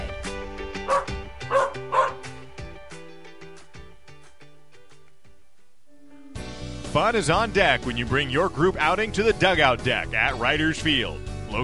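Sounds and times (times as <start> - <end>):
steady musical background: 0.0 - 11.6
dog barking: 0.9 - 2.2
speech: 7.0 - 11.6.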